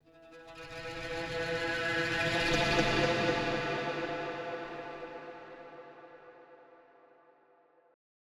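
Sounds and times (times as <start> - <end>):
tense cinematic guitar movement: 0.2 - 6.0.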